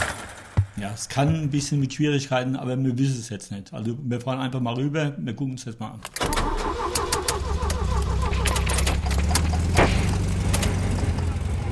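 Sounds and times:
speech: 0:00.8 - 0:07.0
sharp clicks and rattles: 0:06.0 - 0:11.4
tuned sports car engines growling and revving: 0:08.1 - 0:11.7.

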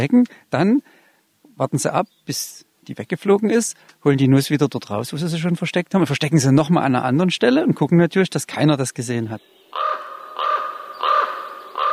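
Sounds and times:
speech: 0:00.0 - 0:01.0, 0:01.6 - 0:09.8
crow cawing: 0:09.7 - 0:11.9.

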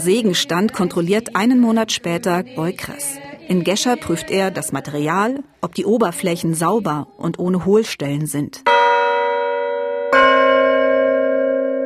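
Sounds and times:
speech: 0:00.0 - 0:08.7
newly cast church bell struck for testing: 0:08.6 - 0:11.8.

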